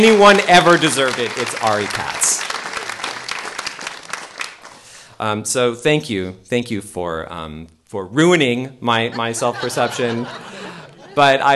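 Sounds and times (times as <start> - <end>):
speech: 0.0 - 2.5, 5.2 - 11.5
audience applause of many hands clapping: 0.0 - 5.0
laughter: 9.0 - 11.5.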